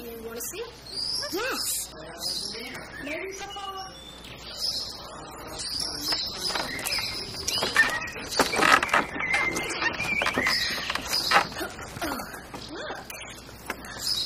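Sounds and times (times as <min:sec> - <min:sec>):
speech: 0:00.4 - 0:03.6
rustling: 0:06.0 - 0:13.8
injured dog whining and whimpering: 0:07.4 - 0:13.1.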